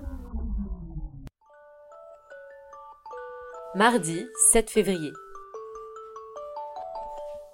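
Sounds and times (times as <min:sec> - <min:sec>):
electronic phone alarm chiming melody: 0:01.5 - 0:07.5
speech: 0:03.8 - 0:05.2.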